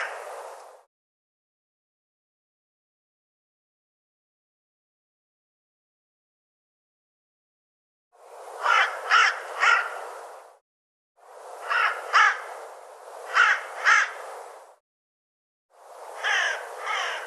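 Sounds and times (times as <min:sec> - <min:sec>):
bird cawing: 0:00.0 - 0:00.2, 0:08.6 - 0:10.2, 0:11.6 - 0:12.6, 0:13.3 - 0:14.3, 0:16.1 - 0:17.2.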